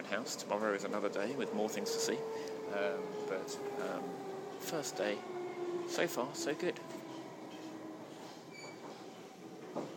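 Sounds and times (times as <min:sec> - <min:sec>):
London Underground District line train running: 0:00.0 - 0:09.9
speech: 0:00.1 - 0:07.0, 0:09.8 - 0:09.9
underground train clatter: 0:06.9 - 0:09.9
train wheel squeals: 0:08.5 - 0:09.1.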